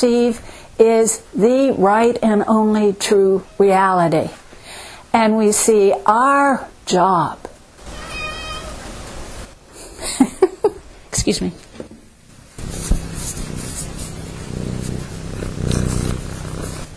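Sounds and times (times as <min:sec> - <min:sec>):
speech: 0:00.0 - 0:04.4, 0:05.1 - 0:07.5, 0:11.1 - 0:11.6
petted cat meowing: 0:07.8 - 0:09.0
petted cat purring: 0:12.6 - 0:16.9.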